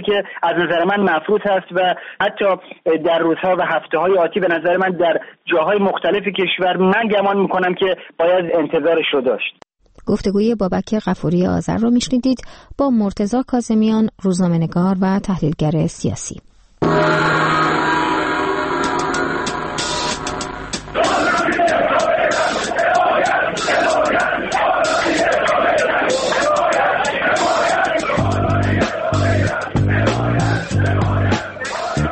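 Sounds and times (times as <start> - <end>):
speech: 0.0 - 17.3
steady tones: 16.5 - 32.0
large crowd in Iran shouting and yelling in protest: 21.0 - 32.0.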